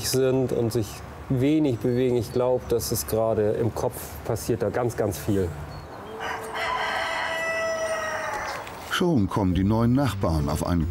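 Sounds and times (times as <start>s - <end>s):
speech: 0.1s - 5.7s, 9.0s - 10.9s
rooster crowing: 6.0s - 8.8s.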